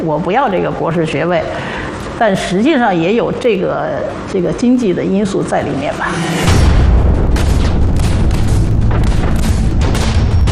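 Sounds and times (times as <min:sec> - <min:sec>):
speech: 0:00.0 - 0:06.8
artillery cannon fire at the Lugou Bridge in China: 0:06.4 - 0:10.5.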